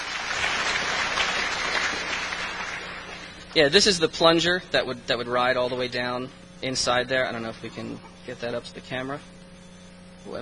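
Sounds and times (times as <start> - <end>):
audience applause: 0.0 - 3.3
speech: 3.6 - 9.4, 10.2 - 10.4.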